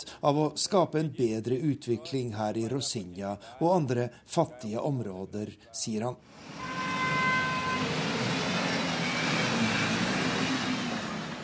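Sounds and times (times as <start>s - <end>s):
speech: 0.0s - 6.9s
slow-moving street traffic on Prasa General Osorio in Ipanema Brazil: 6.2s - 11.4s
car horn: 6.5s - 10.0s.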